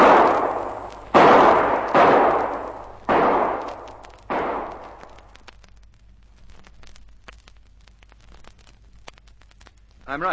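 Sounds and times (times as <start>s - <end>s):
revolver shots fired from behind a rock: 0.0s - 5.4s.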